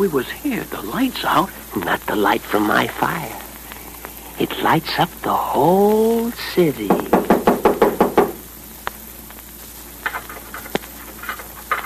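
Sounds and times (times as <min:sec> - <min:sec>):
speech: 0:00.0 - 0:03.4, 0:04.4 - 0:07.1
firm knocks on a door: 0:06.9 - 0:08.4
faint taps and rattles at a lock: 0:06.9 - 0:09.4, 0:10.0 - 0:11.8.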